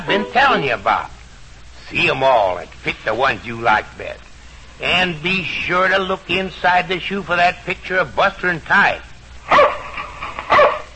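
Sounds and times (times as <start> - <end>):
speech: 0.0 - 1.2, 1.9 - 9.8
faint hum: 0.0 - 10.9
dog barking: 9.5 - 9.9, 10.5 - 10.9.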